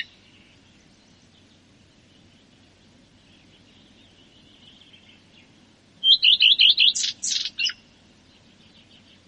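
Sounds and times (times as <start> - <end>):
common redstart singing: 0.0 - 9.2.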